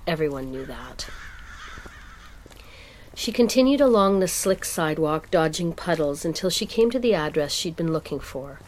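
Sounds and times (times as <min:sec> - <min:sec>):
outdoor hiss: 0:00.0 - 0:08.6
speech: 0:00.1 - 0:01.4, 0:03.2 - 0:08.6
crow cawing: 0:00.6 - 0:02.9.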